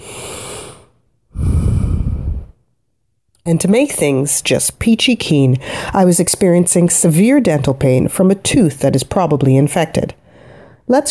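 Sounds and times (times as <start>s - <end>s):
deep yogic breath inhaling and exhaling: 0.0s - 2.6s, 10.2s - 10.9s
speech: 3.4s - 10.2s, 10.9s - 11.0s.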